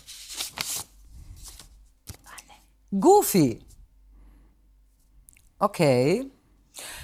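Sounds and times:
paper envelope being torn and rustled open: 0.0s - 1.6s
speech: 2.9s - 3.7s, 5.6s - 6.4s.

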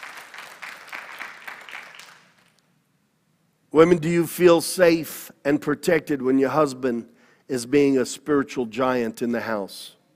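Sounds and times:
audience clapping in agreement: 0.0s - 2.6s
speech: 3.7s - 10.0s.

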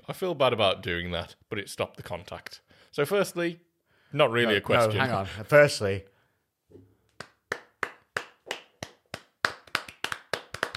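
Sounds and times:
speech: 0.1s - 6.1s
slow hand clapping by a single person: 7.1s - 10.7s.

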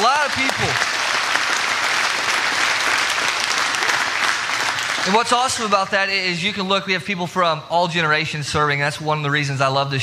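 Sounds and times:
church audience applauding for volunteers: 0.0s - 5.8s
speech: 5.0s - 10.0s.

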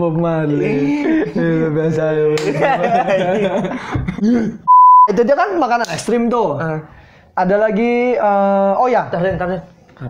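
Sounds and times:
speech: 0.0s - 10.0s
people chuckling and chattering: 0.5s - 4.6s.

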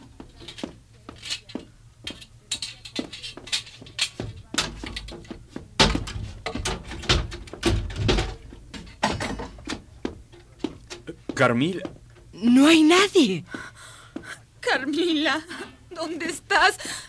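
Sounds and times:
door being forced open with heavy thuds and rattling: 4.2s - 9.8s
speech: 11.4s - 13.5s, 14.9s - 17.0s.

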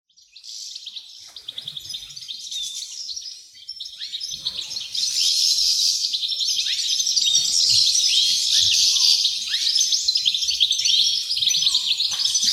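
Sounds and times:
dozens of wrens chirping and trilling in a backyard: 0.2s - 12.5s.

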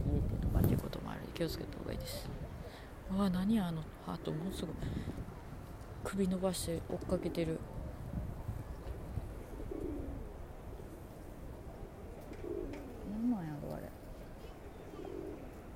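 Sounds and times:
steady outdoor wind: 0.0s - 15.7s
pigeons cooing in soft low repeated calls: 0.9s - 5.5s, 9.0s - 15.7s
speech: 1.4s - 2.4s, 3.1s - 5.2s, 6.0s - 7.7s.

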